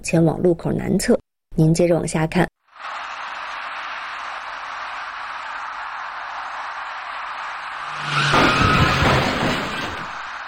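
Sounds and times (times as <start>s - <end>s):
speech: 0.0s - 2.5s
taxi tires screeching while braking hard at an intersection: 2.8s - 10.4s.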